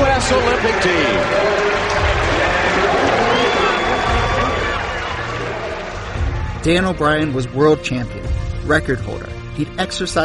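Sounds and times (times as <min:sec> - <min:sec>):
large stadium crowd at the U.S. Olympic trials roaring and cheering: 0:00.0 - 0:07.4
speech: 0:00.3 - 0:01.6, 0:06.6 - 0:10.2.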